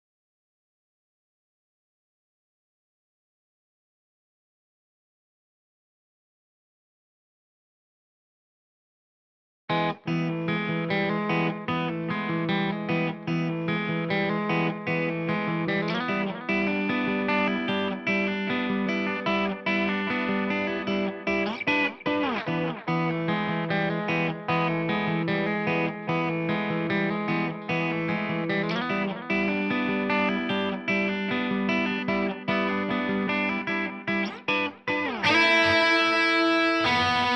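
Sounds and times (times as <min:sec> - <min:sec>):
bass guitar: 0:09.8 - 0:37.3.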